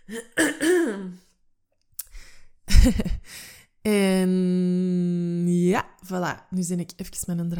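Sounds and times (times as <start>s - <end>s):
hoarse throat-clearing with a voiced groan: 0.0s - 1.2s
rough forceful coughs: 0.0s - 1.2s
speech: 0.1s - 1.2s, 2.8s - 5.1s, 5.7s - 7.5s.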